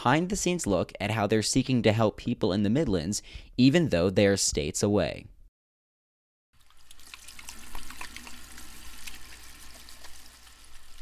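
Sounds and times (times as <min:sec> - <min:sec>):
speech: 0:00.0 - 0:05.3
hot water tap running into a sink: 0:06.6 - 0:11.0.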